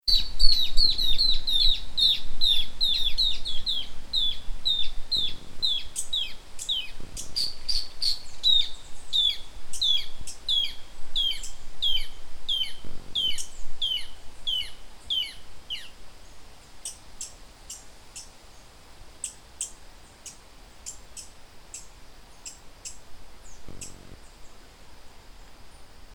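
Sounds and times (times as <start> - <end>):
Phacellodomus erythrophthalmus: 0.0 - 24.6.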